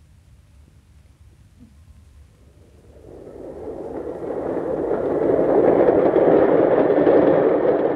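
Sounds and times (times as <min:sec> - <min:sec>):
train rumbling on rails arriving at a station platform: 0:02.4 - 0:07.9.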